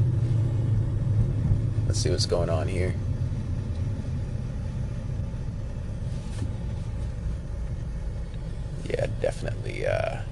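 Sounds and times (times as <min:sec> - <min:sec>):
road traffic rumble of passing vehicles: 0:00.0 - 0:10.3
speech: 0:01.9 - 0:03.1.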